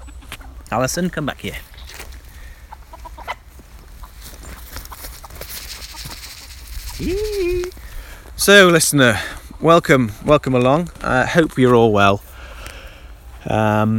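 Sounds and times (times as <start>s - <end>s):
hens clucking softly: 0.0s - 7.8s, 9.0s - 9.8s
outdoor noise: 0.0s - 13.9s
speech: 0.7s - 1.7s, 7.0s - 7.2s, 8.4s - 12.3s, 13.4s - 13.9s
hen giving a loud drawn-out call: 1.6s - 7.9s.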